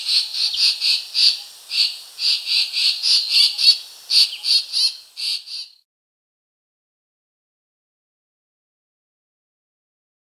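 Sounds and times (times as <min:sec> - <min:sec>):
racket-tailed treepie scolding calls: 0:00.0 - 0:05.7.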